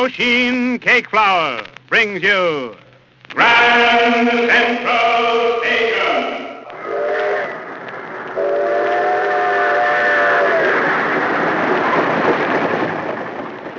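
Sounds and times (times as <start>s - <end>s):
speech: 0.0s - 6.4s
train rushing along the rails toward the Hudson River: 3.6s - 13.7s
train whistle blowing: 3.7s - 7.7s, 8.4s - 10.9s.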